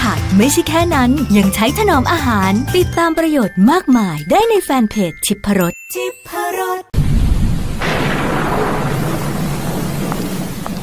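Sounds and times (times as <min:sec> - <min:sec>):
speech: 0:00.4 - 0:07.0
deep rumble of thunder: 0:07.0 - 0:10.8
steady heavy rain: 0:07.0 - 0:10.8.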